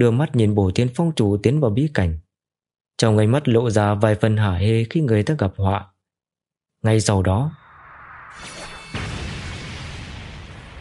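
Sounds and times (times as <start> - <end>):
speech: 0.0 - 2.2, 3.0 - 5.9, 6.8 - 7.6
thunderous explosion with sustained rumbling roar: 7.7 - 10.7.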